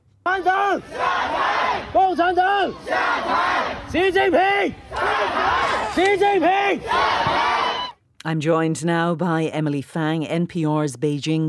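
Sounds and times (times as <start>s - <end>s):
speech: 0.3s - 1.4s, 2.0s - 7.6s, 8.2s - 11.4s
large protest crowd chanting in unison: 0.3s - 7.9s.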